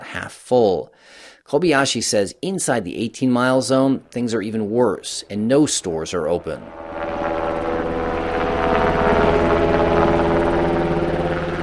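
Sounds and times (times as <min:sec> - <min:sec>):
speech: 0:00.2 - 0:07.2
Japanese self-defense forces helicopter rotor thumping over Itate Japan: 0:04.5 - 0:11.6.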